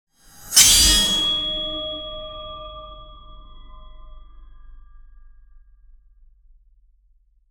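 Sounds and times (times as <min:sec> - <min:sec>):
mystical sword slashes: 0:00.4 - 0:01.6.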